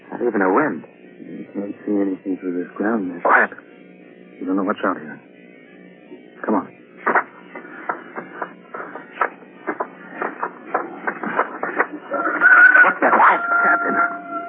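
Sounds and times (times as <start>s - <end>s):
speech: 0.2s - 3.8s, 4.4s - 5.3s
crunching shuffling footsteps: 7.0s - 14.2s
rooster crowing: 12.1s - 14.4s.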